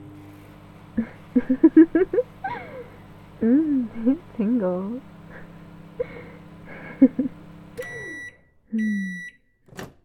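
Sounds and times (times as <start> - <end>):
microwave oven humming with clunks: 0.0 - 9.4
laughter: 1.0 - 4.4, 5.3 - 7.4
speech: 3.4 - 5.1
microwave oven electronic beeps: 7.8 - 9.4.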